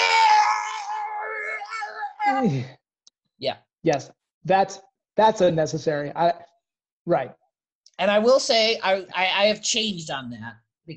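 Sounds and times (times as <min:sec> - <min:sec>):
person imitating a battle scream: 0:00.0 - 0:02.7
person yelping: 0:00.0 - 0:02.7
speech: 0:02.3 - 0:02.8, 0:03.4 - 0:06.5, 0:07.1 - 0:07.4, 0:08.0 - 0:10.9.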